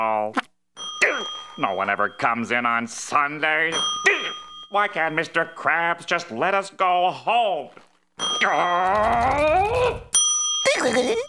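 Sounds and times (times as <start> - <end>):
small service bell struck: 0.8 - 2.4, 3.7 - 5.7, 10.2 - 11.2
speech: 1.6 - 4.1, 4.7 - 7.8, 8.4 - 11.2.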